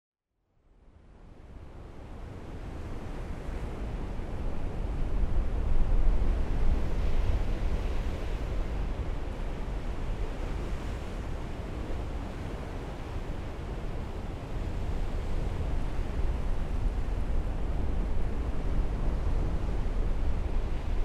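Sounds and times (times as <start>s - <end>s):
surf waves on the Bay View Jetty in Tillamook County Oregon: 1.8s - 21.0s.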